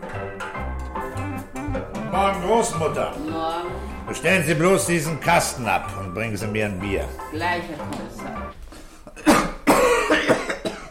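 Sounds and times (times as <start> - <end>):
speech: 1.7 - 8.4
man with a bad chesty cough coughing: 9.1 - 10.9.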